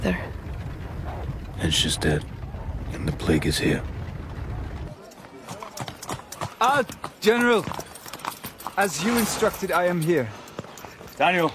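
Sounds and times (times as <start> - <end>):
speech: 0.0 - 0.4, 1.6 - 4.0, 6.6 - 7.8, 8.8 - 10.4, 11.2 - 11.5
low rumble: 0.0 - 5.0
horse hooves clip-clopping on a hard surface: 0.0 - 11.5.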